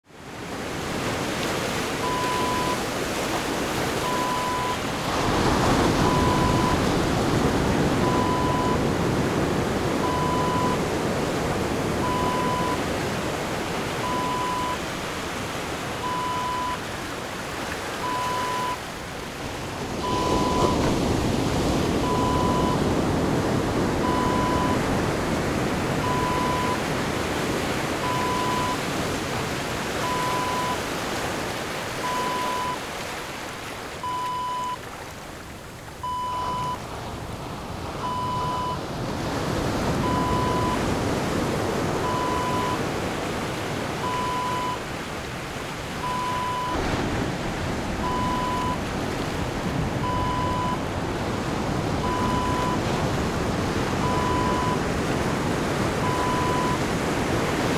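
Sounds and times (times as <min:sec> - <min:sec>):
ocean waves: 0:00.0 - 0:57.7.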